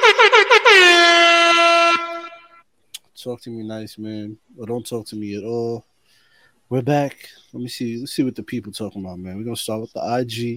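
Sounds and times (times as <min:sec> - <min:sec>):
air horn blasts: 0:00.0 - 0:02.6
speech: 0:03.2 - 0:05.9, 0:06.7 - 0:10.5.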